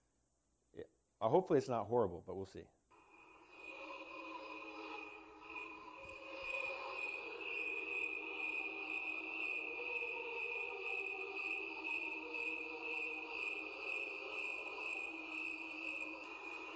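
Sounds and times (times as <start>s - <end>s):
speech: 0.8s - 2.8s
dense chorus of crickets trilling: 4.5s - 16.7s.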